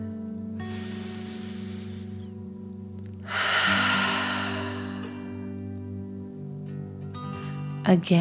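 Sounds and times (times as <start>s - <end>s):
soft steady drone: 0.0s - 7.1s
forceful breath pushed out through the mouth: 0.7s - 2.4s, 3.2s - 5.5s
long airy breath in: 0.7s - 2.4s, 3.2s - 5.7s
speech: 7.9s - 8.1s.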